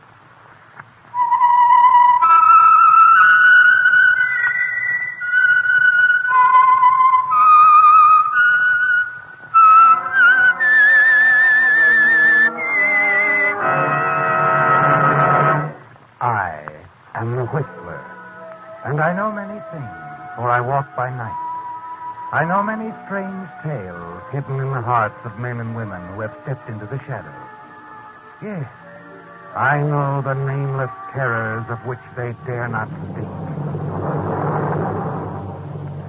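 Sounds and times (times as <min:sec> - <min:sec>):
fuller musical tones: 0:01.1 - 0:36.0
whistled theme melody of a radio program: 0:01.2 - 0:15.7, 0:17.6 - 0:32.8
speech: 0:24.3 - 0:27.5, 0:28.4 - 0:28.8, 0:29.6 - 0:33.2, 0:34.0 - 0:35.1.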